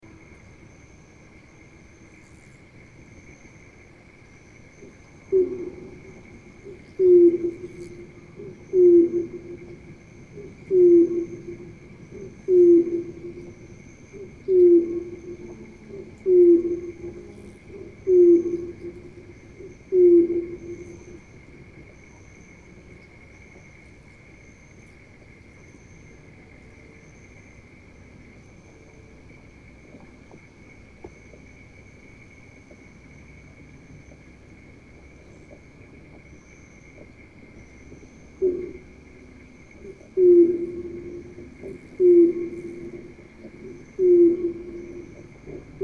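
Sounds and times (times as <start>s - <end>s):
heron, filtered: 4.8s - 27.4s, 33.5s - 45.8s.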